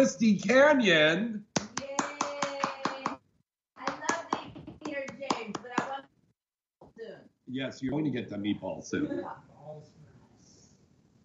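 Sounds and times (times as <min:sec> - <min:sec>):
speech: 0:00.0 - 0:01.5, 0:07.5 - 0:10.0
few people clapping: 0:01.6 - 0:03.2, 0:03.8 - 0:06.0.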